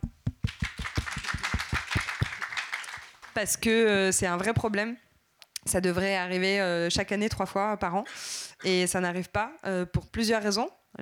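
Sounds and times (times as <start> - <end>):
few people clapping in a steady rhythm: 0.0 - 3.6
speech: 3.4 - 5.1, 5.7 - 10.9.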